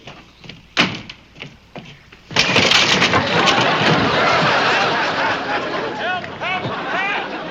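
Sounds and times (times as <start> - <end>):
wooden knocks and creaks: 0.0 - 4.6
clattering rumble of falling timber: 0.0 - 7.1
wooden steps collapsing with a loud crash: 0.0 - 7.1
laughter: 3.1 - 7.5.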